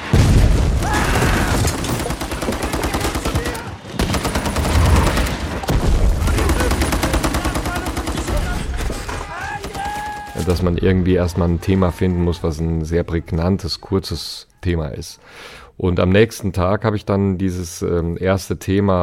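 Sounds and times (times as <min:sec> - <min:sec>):
heavy booming blasts in a film battle scene: 0:00.0 - 0:02.6, 0:03.9 - 0:07.1
rapid gunfire bursts in a film battle scene: 0:01.3 - 0:10.2
speech: 0:10.5 - 0:19.0.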